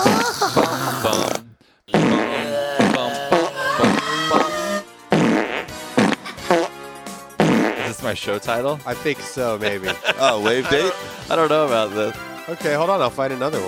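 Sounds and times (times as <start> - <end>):
fart sound effect: 0.0 - 6.8, 7.4 - 8.0
speech: 8.1 - 13.6
laughter: 9.4 - 12.0.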